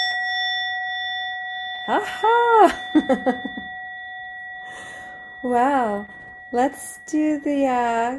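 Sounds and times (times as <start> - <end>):
meditation bell ringing: 0.0 - 8.1
person exclaiming and laughing: 1.9 - 3.6
speech: 1.9 - 3.8, 4.7 - 8.1.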